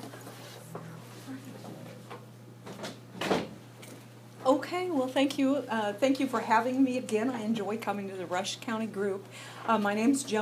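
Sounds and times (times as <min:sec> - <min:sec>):
room murmur: 0:00.0 - 0:10.3
steady low electrical hum: 0:00.0 - 0:10.3
door swinging shut with a solid thud: 0:03.2 - 0:03.6
speech: 0:04.5 - 0:10.3.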